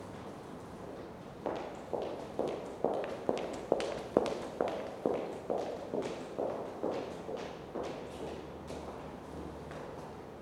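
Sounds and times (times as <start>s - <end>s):
high heels footsteps: 0.9s - 10.1s.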